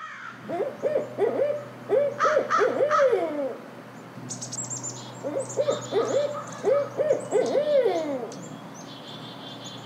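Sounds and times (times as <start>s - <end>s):
birdsong: 0.0s - 9.8s
barred owl hooting call: 0.1s - 3.6s, 5.2s - 8.4s.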